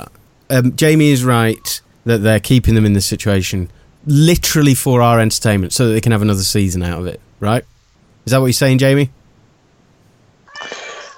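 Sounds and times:
speech: 0.0s - 9.2s
cat meowing: 10.5s - 11.1s.

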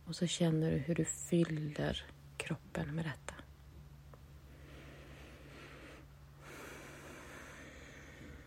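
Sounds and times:
low steady hum: 0.0s - 8.4s
speech: 0.1s - 3.3s
long deep inhale through the nose: 4.5s - 8.4s.

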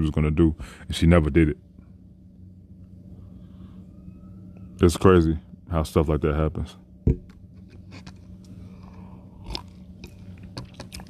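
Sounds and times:
speech: 0.0s - 1.7s, 4.8s - 8.0s
low steady hum: 0.0s - 11.0s
person sipping Earl Grey tea: 7.8s - 11.0s
lip smacks and swallows: 8.8s - 11.0s.

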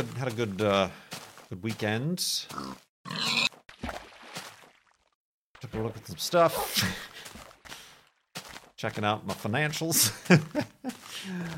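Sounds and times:
speech: 0.0s - 3.4s, 5.7s - 7.1s, 8.8s - 11.5s
pig grunting and snuffling: 2.5s - 3.5s.

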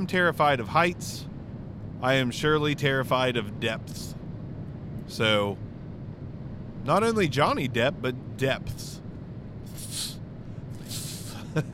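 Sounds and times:
speech: 0.0s - 1.3s, 2.0s - 4.2s, 5.1s - 5.6s, 6.8s - 9.0s
voice imitating a hissing snake: 9.7s - 10.2s, 10.8s - 11.4s.

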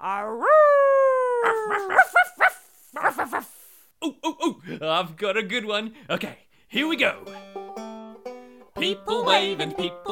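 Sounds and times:
speech: 0.0s - 0.6s, 1.6s - 2.6s, 4.7s - 7.6s, 8.8s - 10.0s
person imitating a dog howling and barking: 0.0s - 3.6s.

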